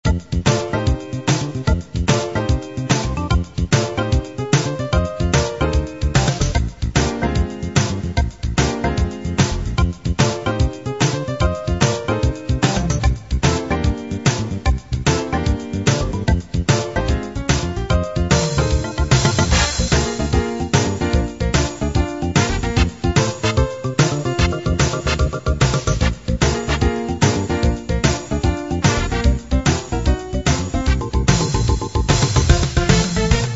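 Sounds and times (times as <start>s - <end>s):
Chicago blues music: 0.0s - 33.5s.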